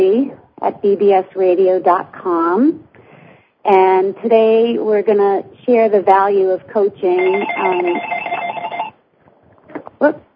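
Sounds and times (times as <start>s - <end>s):
speech: 0.6s - 2.8s, 3.6s - 8.2s, 10.0s - 10.2s
telephone ringing with a warbling electronic tone: 7.1s - 9.0s.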